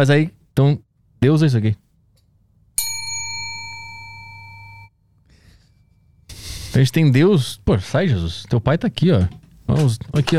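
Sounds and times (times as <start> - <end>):
speech: 0.0 - 1.8, 6.8 - 10.3
small bell struck once: 2.8 - 4.9.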